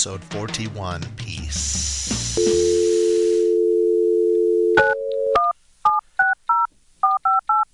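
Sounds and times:
speech: 0.0 - 2.8
phone dial tone: 2.4 - 7.6.

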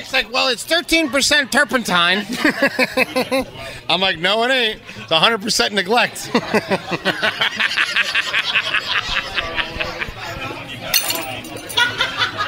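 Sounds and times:
speech: 0.0 - 10.0
chatter: 0.0 - 12.4
rhythmic laughter: 2.3 - 3.6, 6.3 - 10.2
glass breaking: 11.0 - 11.8.

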